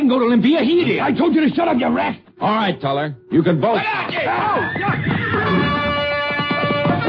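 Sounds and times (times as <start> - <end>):
speech: 0.1 - 5.1
frightened horse whinnying and rearing: 4.3 - 6.2.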